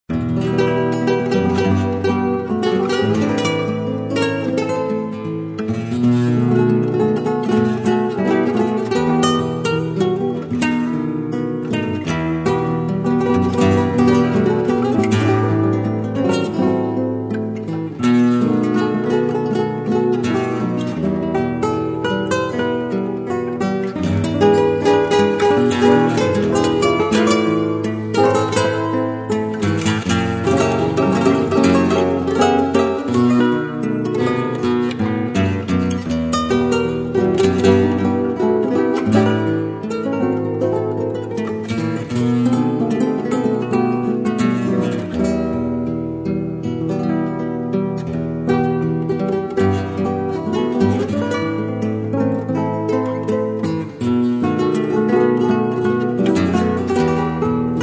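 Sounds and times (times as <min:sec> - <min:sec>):
gypsy guitar: 0:00.0 - 0:57.8.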